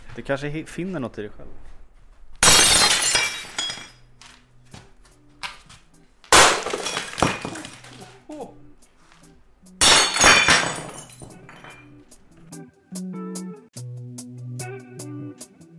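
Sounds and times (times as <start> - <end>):
speech: 0.2 - 1.8
kettle, plates and glasses deliberately smashed: 2.4 - 4.0, 6.3 - 8.1, 9.8 - 11.9
scattering shards and tinkles of broken glass and crockery: 2.4 - 4.0, 6.4 - 8.0, 9.8 - 11.9.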